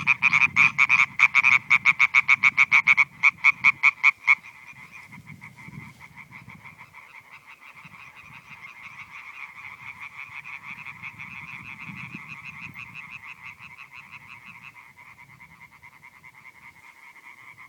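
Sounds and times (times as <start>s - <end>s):
European tree frog chorus: 0.0s - 17.6s.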